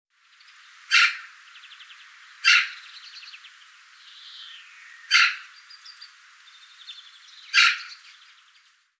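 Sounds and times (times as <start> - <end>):
Eurasian magpie Pica pica giving harsh rattling chatters: 0.9 - 1.3, 5.1 - 5.5, 7.5 - 8.1.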